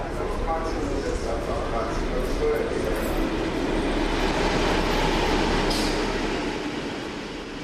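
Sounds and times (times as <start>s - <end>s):
faint voices: 0.0s - 3.5s
train from Munich to Frankfurt rumbling and clattering on rails: 0.0s - 7.6s.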